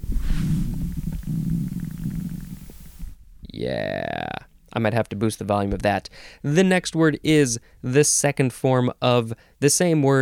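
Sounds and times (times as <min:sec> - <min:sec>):
stomach growling in a low gurgling rumble: 0:00.0 - 0:03.1
speech: 0:03.6 - 0:04.2, 0:04.8 - 0:10.2.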